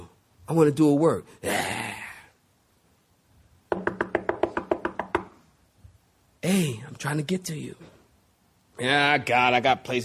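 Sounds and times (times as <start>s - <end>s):
speech: 0.5s - 1.8s, 7.0s - 8.0s, 8.8s - 10.0s
sharp knocks on a door: 3.7s - 5.4s.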